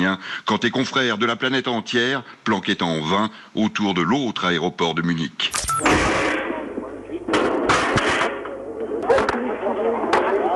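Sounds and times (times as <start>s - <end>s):
speech: 0.0s - 6.3s
noisy crackly outdoor recording: 0.0s - 10.5s
sharp gunshots from sharpshooters at an airfield near Munich: 5.5s - 6.7s, 7.4s - 8.4s.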